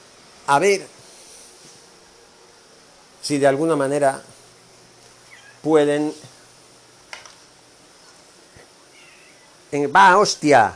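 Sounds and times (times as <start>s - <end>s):
speech: 0.5s - 1.0s, 3.3s - 4.3s, 5.6s - 6.4s, 9.7s - 10.7s
faint cat meowing: 8.9s - 9.5s.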